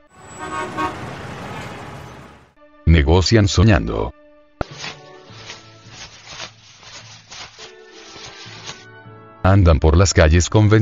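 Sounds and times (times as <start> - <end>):
low rumble of road traffic: 0.0 - 2.6
car horn honking: 0.2 - 2.4
speech: 3.0 - 4.2, 9.5 - 10.8.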